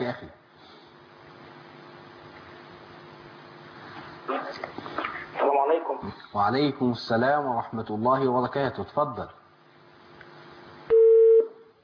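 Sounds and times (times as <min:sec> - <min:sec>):
speech: 0:00.1 - 0:00.4, 0:05.8 - 0:09.4
telephone busy tone after a caller's line is cut off: 0:10.9 - 0:11.6.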